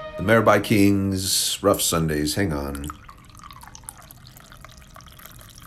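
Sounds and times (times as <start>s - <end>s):
speech: 0.3s - 3.0s
coffee pouring into a cup: 2.5s - 5.6s.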